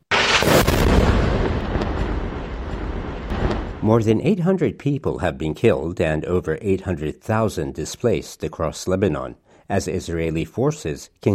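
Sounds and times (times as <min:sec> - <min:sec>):
explosions from artillery fire: 0:00.0 - 0:04.2
speech: 0:03.9 - 0:11.3.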